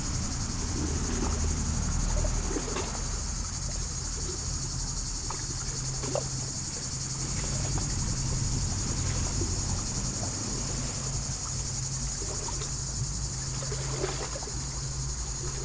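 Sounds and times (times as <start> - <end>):
cicadas buzzing in poplars at Lac du Bourget in France on a hot summer day: 0.0 - 15.6.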